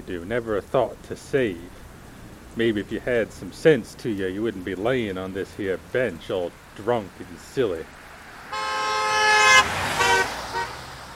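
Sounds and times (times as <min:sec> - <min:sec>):
low street rumble: 0:00.0 - 0:11.1
speech: 0:00.1 - 0:01.8, 0:02.6 - 0:08.0
car horn honking: 0:08.5 - 0:10.9.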